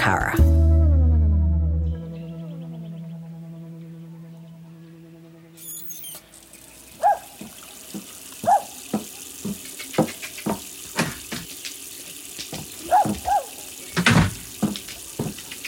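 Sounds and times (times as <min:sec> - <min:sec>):
speech: 0:00.0 - 0:00.5
short musical sting: 0:00.4 - 0:05.7
tap water gushing into a sink: 0:06.0 - 0:15.6.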